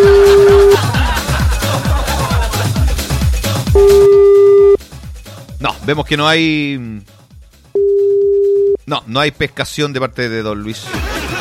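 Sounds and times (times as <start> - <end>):
telephone busy signal from an unanswered call: 0.0 - 0.8, 3.8 - 4.8, 7.8 - 8.8
low rhythmic thumping: 0.0 - 0.9
laughter: 0.0 - 3.1, 10.7 - 11.3
speech: 5.9 - 7.2, 8.9 - 11.1.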